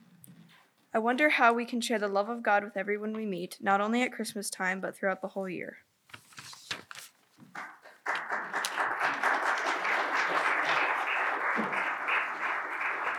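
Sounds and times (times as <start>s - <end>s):
speech: 0.9s - 5.9s
crowd applauding after a play: 7.5s - 13.1s.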